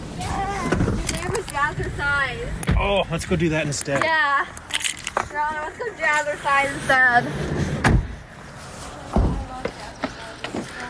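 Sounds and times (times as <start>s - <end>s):
faint noise: 0.0s - 10.8s
speech: 1.6s - 4.6s, 5.3s - 8.0s
car door shutting with a solid thud: 7.8s - 8.1s.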